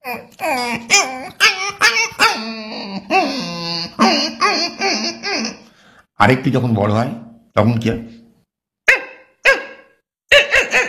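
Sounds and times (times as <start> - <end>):
human voice imitating a puppy's whimpering: 0.0 - 5.7, 10.3 - 10.8
speech: 6.2 - 8.2.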